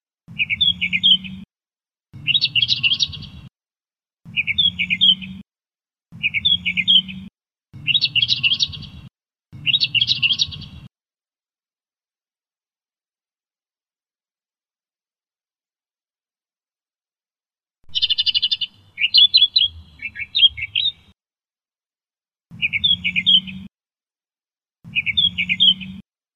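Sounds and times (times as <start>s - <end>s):
Australian reed warbler song: 0.3s - 1.4s, 2.2s - 3.5s, 4.3s - 5.4s, 6.2s - 10.9s, 17.8s - 21.2s, 22.5s - 23.7s, 24.9s - 26.0s.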